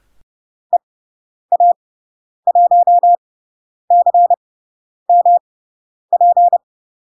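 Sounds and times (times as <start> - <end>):
Morse code tone sending a Spanish radio callsign: 2.5 - 3.2, 3.9 - 4.4, 5.1 - 5.4, 6.2 - 6.6.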